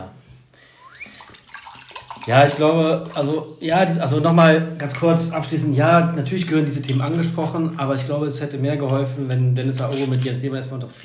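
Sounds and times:
water pouring into a glass: 0:00.8 - 0:03.6
speech: 0:02.3 - 0:11.0.

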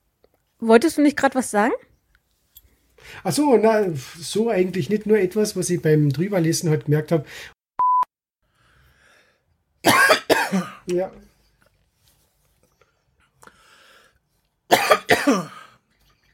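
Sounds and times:
speech: 0:00.6 - 0:01.9, 0:03.0 - 0:07.5, 0:10.9 - 0:11.3
short electronic beep: 0:07.8 - 0:08.1
person coughing in loud harsh fits: 0:09.9 - 0:10.9, 0:14.7 - 0:15.8.

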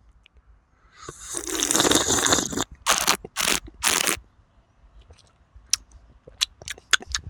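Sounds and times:
slurping freshly brewed coffee during a coffee tasting: 0:01.0 - 0:04.2
wet mouth sounds: 0:01.0 - 0:04.2, 0:05.1 - 0:07.2.

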